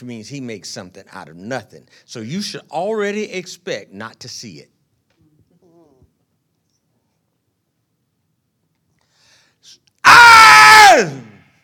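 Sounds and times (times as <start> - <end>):
speech: 0.0 - 4.8, 9.6 - 11.4
person screaming loudly: 10.0 - 11.4.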